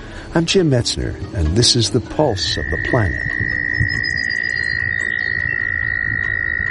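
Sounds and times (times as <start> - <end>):
speech: 0.4 - 3.4
dense low chorus of croaking: 1.2 - 6.6
American toads trilling in springtime in the northeastern United States: 1.7 - 6.6.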